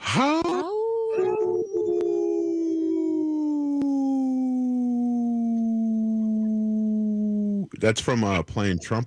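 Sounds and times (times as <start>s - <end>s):
speech: 0.1s - 0.4s, 7.8s - 9.0s
person imitating a wolf howl: 0.1s - 7.7s.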